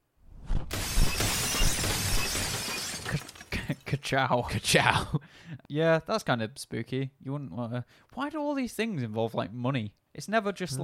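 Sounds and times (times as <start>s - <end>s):
window glass shattering: 0.7s - 3.9s
breaking and tinkling glass shards: 1.1s - 3.8s
speech: 4.0s - 10.8s.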